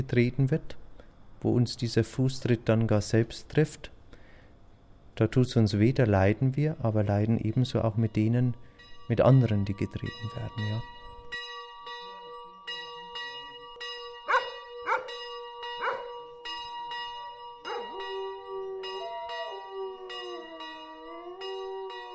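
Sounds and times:
speech: 0.0s - 0.8s, 1.4s - 4.0s, 5.2s - 11.4s
church bells ringing: 7.1s - 22.1s
dogs barking: 14.3s - 15.2s, 15.8s - 16.2s, 17.6s - 18.5s
dogs howling: 14.3s - 16.2s, 17.2s - 22.1s.

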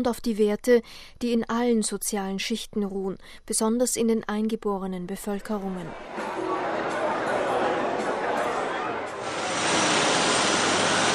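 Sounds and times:
speech: 0.0s - 6.3s
laughter: 6.0s - 9.6s
helicopter engine roar: 7.5s - 11.1s.

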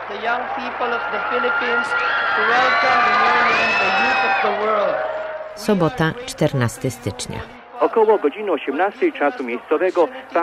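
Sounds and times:
large crowd of young people cheering and shouting in Manila: 0.0s - 6.1s
speech: 0.1s - 10.4s.

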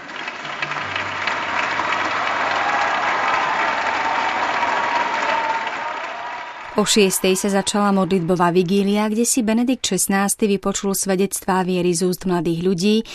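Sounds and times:
large enthusiastic crowd cheering and applauding on the Montorso esplanade: 0.0s - 9.2s
speech: 6.8s - 13.1s.

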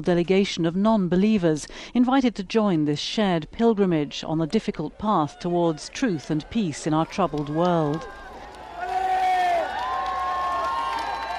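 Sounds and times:
speech: 0.0s - 8.2s
crowd of pilgrims cheering and calling out: 5.3s - 11.3s
scattered clapping: 7.0s - 11.3s.

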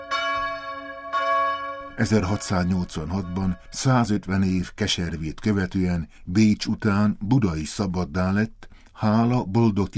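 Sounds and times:
church bell tolling the noon bell: 0.0s - 4.4s
speech: 2.0s - 9.9s.

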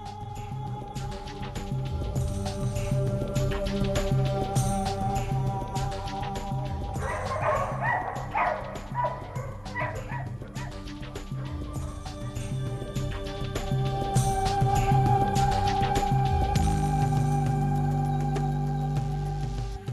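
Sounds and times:
steady low hum: 0.0s - 19.9s
several dogs barking and yipping at the moon across a moonlit hillside: 6.9s - 13.3s.

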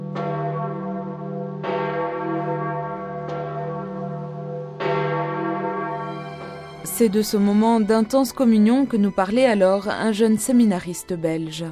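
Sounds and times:
church bell tolling the death knell for a pope in Rome: 0.0s - 8.5s
speech: 6.9s - 11.7s.

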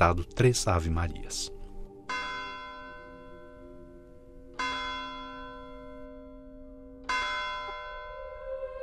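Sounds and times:
speech: 0.0s - 1.6s
church bell strikes: 2.1s - 8.7s.

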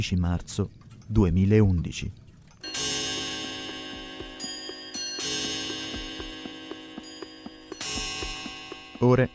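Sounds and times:
speech: 0.0s - 2.2s, 9.0s - 9.3s
clock ticking: 0.0s - 9.3s
dense ringing bell-like tonal wash: 2.5s - 9.3s.

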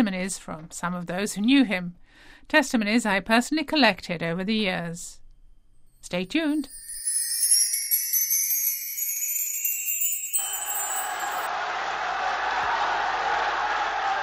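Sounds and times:
speech: 0.0s - 5.2s, 6.0s - 6.8s
high bright ringing tones: 5.4s - 11.5s
prisoners cheering in an archival recording: 10.3s - 14.2s.

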